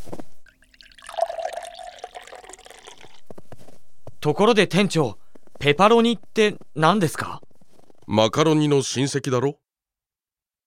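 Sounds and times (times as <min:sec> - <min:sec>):
hot water poured into flour for pizza dough: 0:00.5 - 0:03.2
speech: 0:04.2 - 0:07.4, 0:08.1 - 0:09.6.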